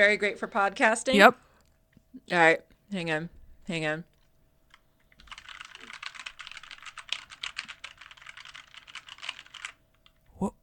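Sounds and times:
speech: 0.0 - 1.4, 2.1 - 4.1
typing on a new mechanical computer keyboard: 4.7 - 10.3.

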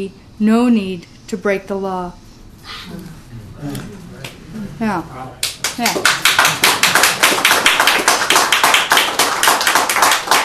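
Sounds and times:
speech: 0.0 - 3.9, 4.8 - 6.6
audience clapping: 5.4 - 10.4.

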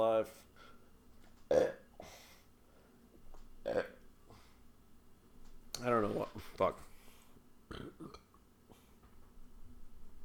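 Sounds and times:
speech: 0.0 - 0.5, 6.1 - 6.9
quiet breathing: 0.3 - 1.0, 2.0 - 3.2, 4.2 - 4.8, 6.4 - 7.5, 8.7 - 9.2
short throaty burps: 1.5 - 2.1, 3.6 - 4.0, 7.7 - 8.3.

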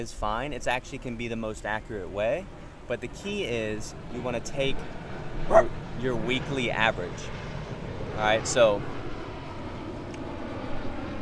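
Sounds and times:
speech: 0.0 - 7.4, 8.2 - 9.0
airplane engine drone passing overhead: 0.0 - 11.2.

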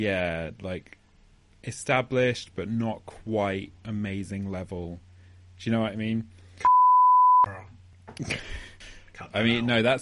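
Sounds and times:
speech: 0.0 - 1.0, 1.6 - 6.4, 7.4 - 9.9
steady censor bleep tone: 6.6 - 7.6.

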